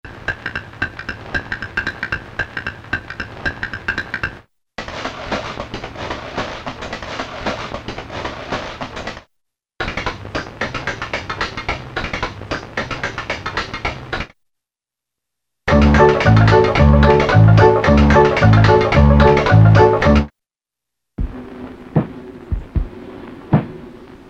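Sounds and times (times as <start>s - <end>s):
Optigan and Roland L-CDX-02 keyboard instruments: 15.7s - 20.3s.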